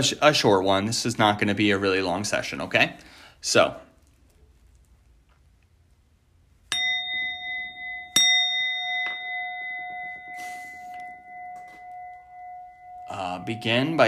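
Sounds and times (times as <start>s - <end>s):
speech: 0.0s - 3.9s, 13.5s - 14.0s
small hand bell ringing: 6.7s - 14.0s.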